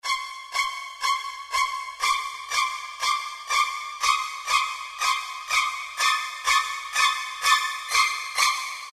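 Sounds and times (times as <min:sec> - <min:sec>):
psycho strings: 0:00.0 - 0:08.9.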